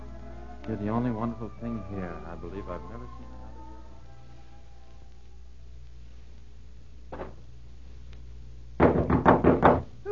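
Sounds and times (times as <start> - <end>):
speech: 0.7 - 3.4
firm knocking on a wooden door: 8.8 - 9.9.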